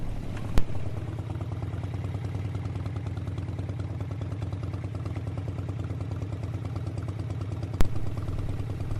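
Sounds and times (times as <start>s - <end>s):
big-displacement motorcycle engine idling: 0.0s - 8.9s.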